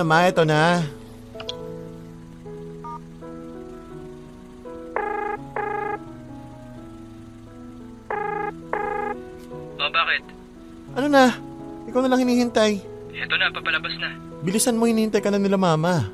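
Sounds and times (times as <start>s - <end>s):
speech: 0.0s - 1.5s, 11.0s - 16.1s
droning tonal background: 0.0s - 16.1s
phone ringing with electronic trills: 2.8s - 3.1s, 4.9s - 6.2s, 8.1s - 10.3s.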